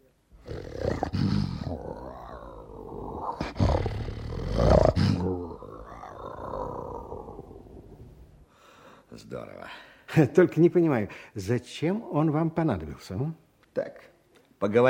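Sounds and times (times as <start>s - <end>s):
lion roaring: 0.4s - 8.1s
speech: 9.2s - 14.8s.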